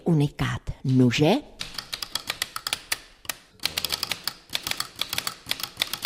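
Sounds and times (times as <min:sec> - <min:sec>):
speech: 0:00.1 - 0:01.5
mechanical typewriter clacking: 0:01.6 - 0:06.0.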